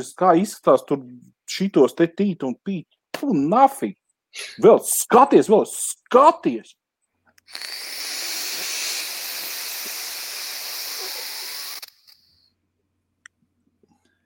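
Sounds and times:
speech: 0:00.0 - 0:06.8, 0:07.5 - 0:08.1
vapor being exhaled from a vape device: 0:07.4 - 0:12.5.

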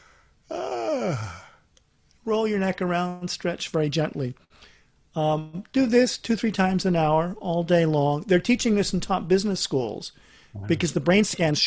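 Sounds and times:
deliberately faked yawn: 0:00.5 - 0:01.6
speech: 0:02.3 - 0:11.6.

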